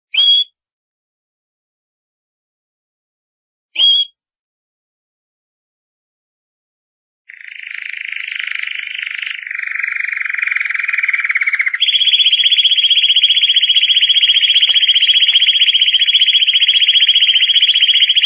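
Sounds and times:
champion singing canary chirp: 7.3s - 18.2s.

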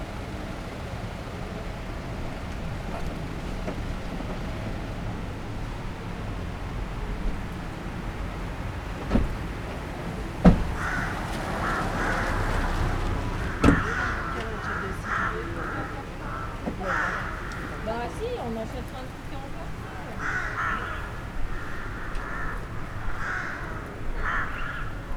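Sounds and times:
low hum of town traffic: 0.0s - 25.1s
sharp knocks: 10.4s - 11.2s, 13.6s - 13.9s
rooks cawing in plane trees of a town square: 10.5s - 25.1s.

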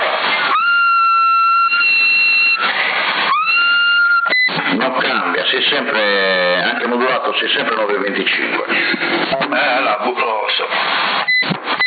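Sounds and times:
CB radio static bursts: 0.0s - 11.8s
whistling over a CB radio on the 27 MHz band: 0.4s - 4.6s
speech: 5.7s - 11.2s.

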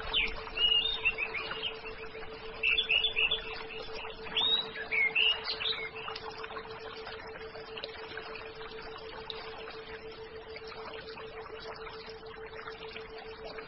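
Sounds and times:
orange-headed thrush singing: 0.0s - 6.2s
low steady hum: 0.0s - 13.6s.

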